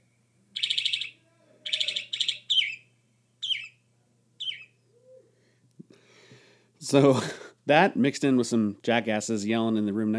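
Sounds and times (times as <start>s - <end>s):
faint low hum: 0.0s - 10.1s
northern mockingbird singing buzzy rattling bursts: 0.6s - 3.8s, 4.4s - 5.2s
speech: 6.9s - 10.1s.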